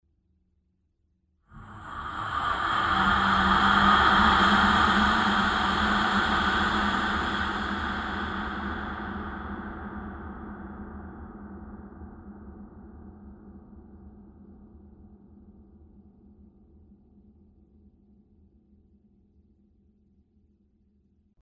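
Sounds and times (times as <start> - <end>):
scary close breathing of a ghost: 1.6 - 10.9.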